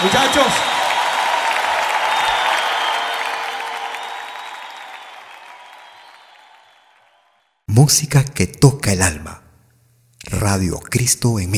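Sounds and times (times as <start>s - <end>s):
speech: 0.0s - 0.8s, 7.8s - 9.4s, 10.2s - 11.5s
crowd applauding an orchestra: 0.0s - 7.6s.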